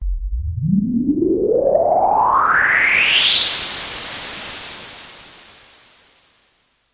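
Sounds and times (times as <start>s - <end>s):
bass synthesizer noise sweeps: 0.0s - 3.7s.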